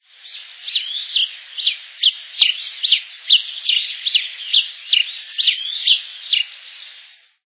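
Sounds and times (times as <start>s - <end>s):
tico-tico-rei calling: 0.0s - 7.2s.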